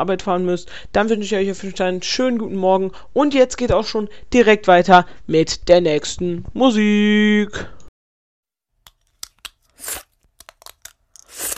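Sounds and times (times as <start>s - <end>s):
speech: 0.0s - 7.8s
plastic dental aligners clicking and snapping while being taken out of the mouth: 8.9s - 11.5s
crackling scraping bursts of dental aligners being taken out: 9.0s - 11.5s.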